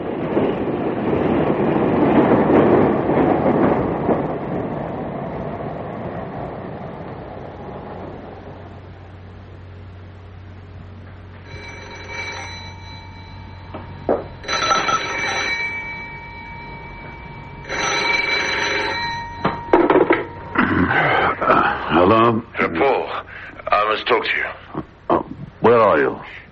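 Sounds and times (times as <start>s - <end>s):
night train rumbling on the rails at a station: 0.0s - 26.5s
low steady hum: 2.9s - 26.5s
telephone bell ringing: 11.4s - 22.8s.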